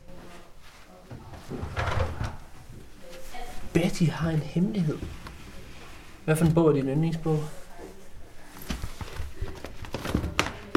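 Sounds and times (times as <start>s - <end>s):
bedroom door opening with creaking and knocking: 1.5s - 2.4s
speech: 3.8s - 5.2s, 6.3s - 7.6s.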